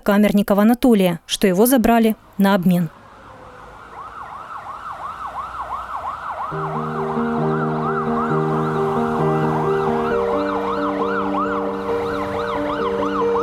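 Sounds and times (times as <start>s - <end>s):
speech: 0.0s - 3.0s
police convoy sirens wailing in the city of Luhansk: 2.9s - 13.4s.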